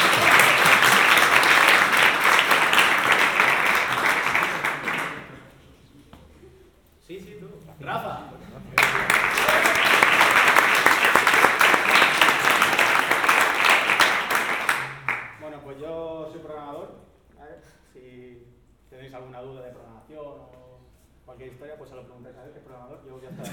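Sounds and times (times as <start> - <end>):
audience applause at a game jam event: 0.0 - 5.6, 8.8 - 15.4.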